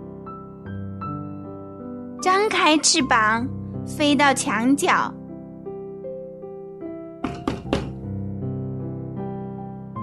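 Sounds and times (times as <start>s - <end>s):
speech: 2.2s - 5.2s
hollow knocks on a door: 7.2s - 8.1s.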